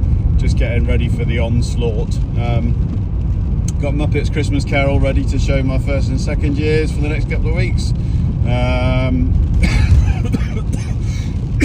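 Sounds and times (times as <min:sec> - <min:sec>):
brief droning hum: 0:00.0 - 0:11.6
steady low rumble: 0:00.0 - 0:11.6
speech: 0:00.4 - 0:03.1, 0:03.8 - 0:11.0
person coughing: 0:09.6 - 0:11.6.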